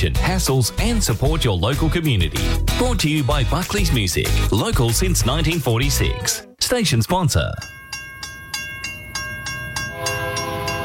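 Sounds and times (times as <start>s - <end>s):
speech: 0.0s - 7.8s
freight train wheels clacking over rail joints: 7.6s - 10.8s
sustained horn-like tone: 9.9s - 10.8s.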